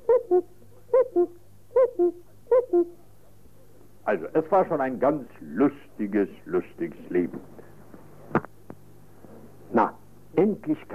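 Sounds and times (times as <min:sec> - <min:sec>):
cuckoo calling in a forest: 0:00.0 - 0:03.0
faint low hum: 0:00.0 - 0:10.9
speech: 0:04.5 - 0:07.6, 0:10.4 - 0:10.9.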